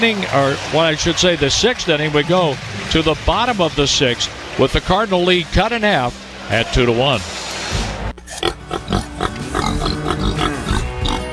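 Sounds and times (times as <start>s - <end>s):
speech: 0.0s - 7.4s
pigs on a farm in Middletown Missouri oinking and grunting: 8.2s - 11.3s.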